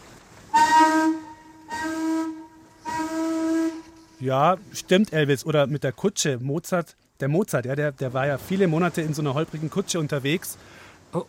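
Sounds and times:
steamship whistle blowing: 0.5 - 4.2
speech: 4.2 - 11.2.

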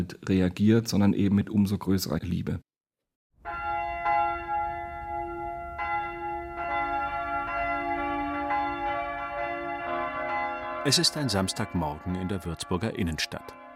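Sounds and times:
speech: 0.0 - 2.7, 10.8 - 13.6
large cathedral bells ringing in a deep peal: 3.4 - 13.7.

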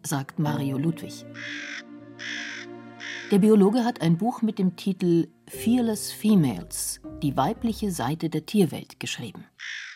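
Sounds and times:
speech: 0.1 - 2.4, 3.3 - 9.8
raven cawing: 1.1 - 3.4, 9.6 - 9.9.

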